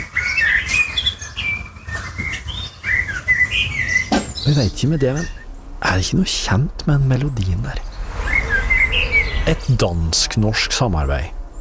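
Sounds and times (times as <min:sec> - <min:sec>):
Eurasian blackbird singing on a house roof: 0:00.0 - 0:06.0, 0:06.8 - 0:11.5
low steady rumble: 0:03.7 - 0:11.5
speech: 0:04.5 - 0:07.9, 0:09.5 - 0:11.5.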